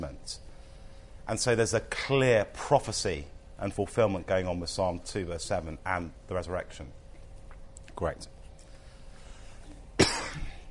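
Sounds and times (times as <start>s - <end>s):
speech: 0.0s - 0.4s, 1.3s - 7.0s, 8.0s - 8.4s
speaker coughing during a Bible teaching session: 10.0s - 10.6s.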